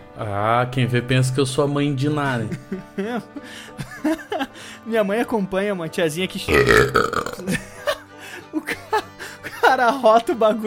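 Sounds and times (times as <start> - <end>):
speech: 0.2 - 7.7, 9.8 - 10.6
laughter: 2.7 - 4.5
loud drawn-out burp: 6.5 - 7.6.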